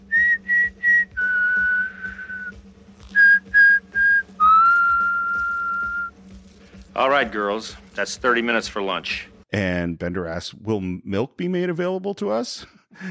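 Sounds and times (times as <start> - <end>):
group of people whistling a march tune: 0.0 - 6.2
speech: 7.0 - 13.1.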